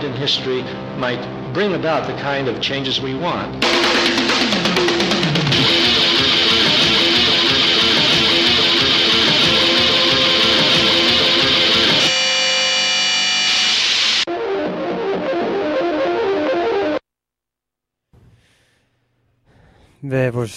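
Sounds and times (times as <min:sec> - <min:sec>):
speech: 0:00.1 - 0:06.0, 0:20.1 - 0:20.5
loud dense experimental music with distorted noisy textures: 0:03.6 - 0:17.0.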